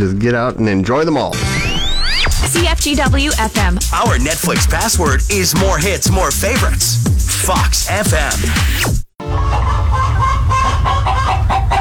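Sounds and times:
speech: 0.0 - 1.6, 2.5 - 9.0
chorus of chickens clucking: 9.2 - 11.7.

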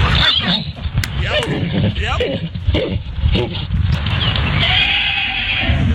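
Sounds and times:
miniature pony whinnying while mating: 0.0 - 5.9
low grunting: 0.4 - 3.8.

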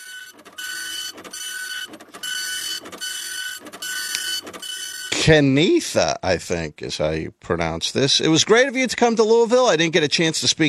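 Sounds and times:
large office copier-printer running as pages feed through: 0.0 - 5.4
speech: 5.2 - 10.6.

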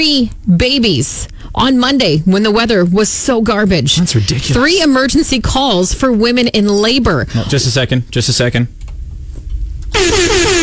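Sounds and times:
speech: 0.0 - 8.8
air horn blaring: 9.9 - 10.6.

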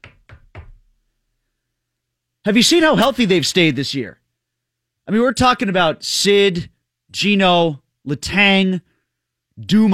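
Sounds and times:
knocking on wood: 0.0 - 0.8
speech: 2.4 - 4.2, 5.1 - 8.9, 9.6 - 9.9.

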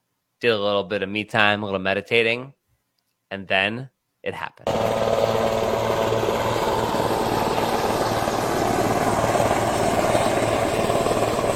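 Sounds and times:
speech: 0.4 - 2.6, 3.3 - 5.4
presidential helicopter taking off: 4.7 - 11.5.

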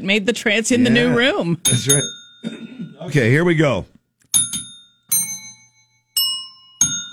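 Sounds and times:
speech: 0.0 - 3.9
hand bell ringing: 1.7 - 2.6, 4.3 - 7.1.

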